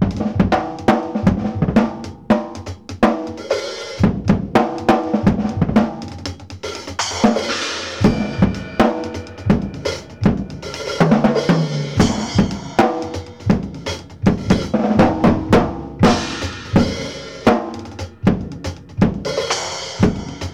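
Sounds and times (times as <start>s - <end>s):
complex acoustic funk drum beat loop: 0.0s - 20.5s.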